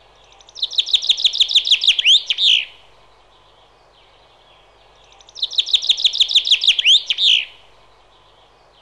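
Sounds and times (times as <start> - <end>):
Common chaffinch singing: 0.0 - 8.8
faint background noise: 0.0 - 8.8.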